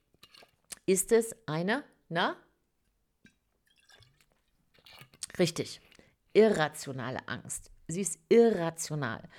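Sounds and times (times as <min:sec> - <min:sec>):
person sipping water: 0:00.1 - 0:00.9, 0:03.7 - 0:06.2
speech: 0:00.9 - 0:02.5, 0:05.4 - 0:09.3.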